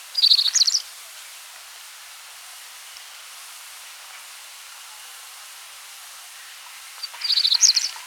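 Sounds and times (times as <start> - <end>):
cinnamon-breasted bunting song: 0.2 - 0.8, 7.0 - 8.0.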